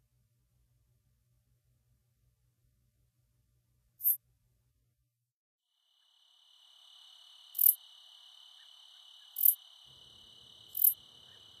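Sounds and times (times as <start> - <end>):
constant shrill insect drone: 5.7 - 11.5
Treetop Bush Katydid song in short high-pitched buzzy bursts: 7.5 - 7.8, 9.4 - 9.6, 10.5 - 11.0.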